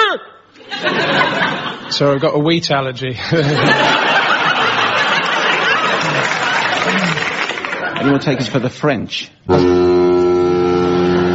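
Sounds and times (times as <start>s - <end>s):
laughter: 0.6s - 2.2s, 3.2s - 8.8s
speech: 1.9s - 4.1s, 8.0s - 10.1s
ship's horn blast: 9.5s - 11.3s.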